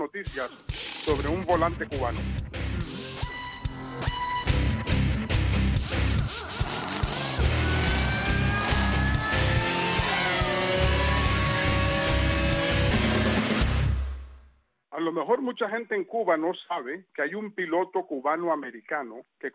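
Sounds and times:
speech: 0:00.0 - 0:03.0, 0:15.0 - 0:19.5
driving theme music with percussive hits and synth tones: 0:00.4 - 0:14.5
swooping engine-like roars: 0:06.7 - 0:13.5.

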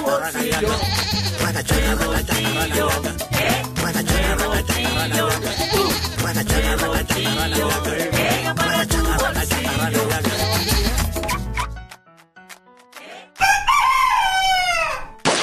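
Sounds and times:
rhythmic music beat: 0:00.0 - 0:12.1
speech: 0:00.1 - 0:04.1
rooster crowing: 0:13.4 - 0:15.2.

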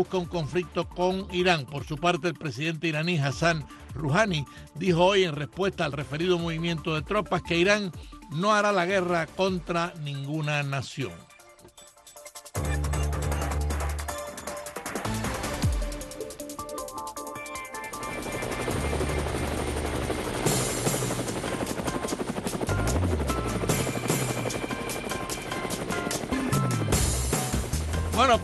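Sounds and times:
speech: 0:00.0 - 0:11.3, 0:28.2 - 0:28.4
churning helicopter engine whine: 0:11.2 - 0:28.4
helicopter rotor thumping: 0:17.9 - 0:28.2.

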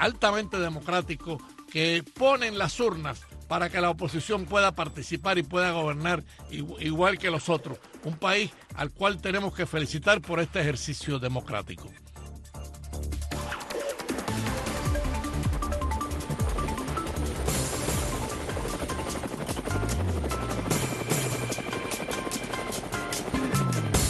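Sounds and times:
speech: 0:00.0 - 0:12.0
helicopter with rotor blades chopping and engine whine: 0:12.0 - 0:24.0.

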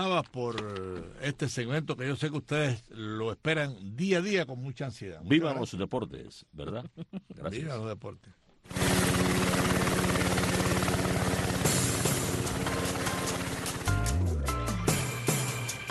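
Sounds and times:
speech: 0:00.0 - 0:09.8
helicopter rotor blades whumping: 0:08.7 - 0:15.8.

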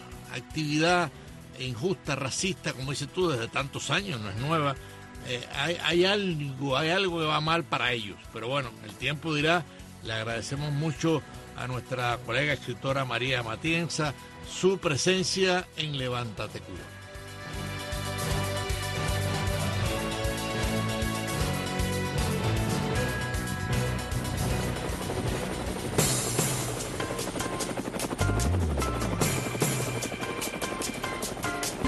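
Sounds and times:
music: 0:00.0 - 0:31.8
speech: 0:00.4 - 0:17.6
helicopter rotor blades thumping with engine roar: 0:16.7 - 0:31.8.

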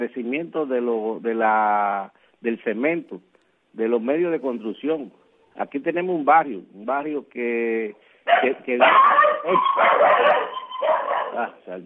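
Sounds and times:
speech: 0:00.0 - 0:11.8
dogs barking and yipping in a neighbourhood: 0:08.3 - 0:11.5.

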